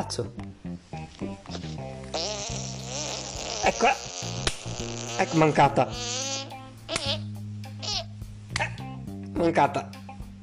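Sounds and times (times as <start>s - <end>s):
speech: 0.1s - 0.4s, 3.7s - 6.3s, 9.4s - 10.0s
fly buzzing: 1.5s - 8.2s.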